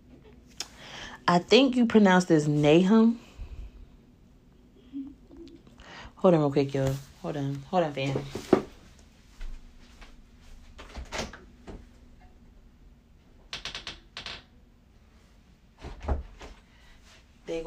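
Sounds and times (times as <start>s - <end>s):
speech: 1.3s - 3.2s, 6.2s - 8.6s
door being handled and opened with clicks, rattles and clunks: 10.8s - 11.8s.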